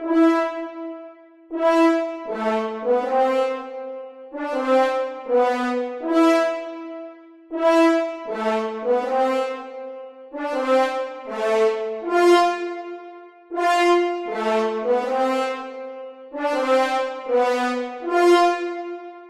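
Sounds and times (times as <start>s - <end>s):
majestic brass music for film: 0.0s - 19.2s.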